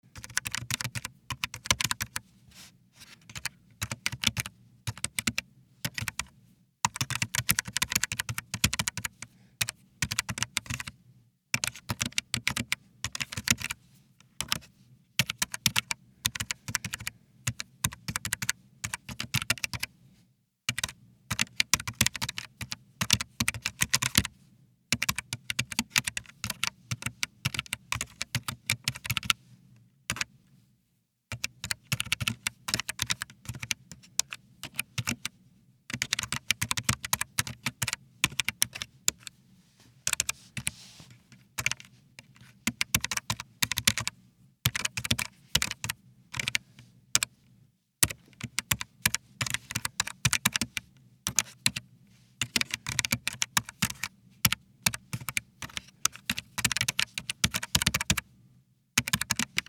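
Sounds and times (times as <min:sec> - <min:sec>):
PC keyboard: 0:00.2 - 0:02.2, 0:03.3 - 0:06.3, 0:06.9 - 0:10.9, 0:11.6 - 0:13.8, 0:14.4 - 0:14.6, 0:15.2 - 0:19.9, 0:20.7 - 0:24.3, 0:25.0 - 0:29.4, 0:31.3 - 0:35.3, 0:35.9 - 0:39.3, 0:41.6 - 0:44.1, 0:44.7 - 0:47.3, 0:48.0 - 0:51.8, 0:52.4 - 0:58.2, 0:59.0 - 0:59.6.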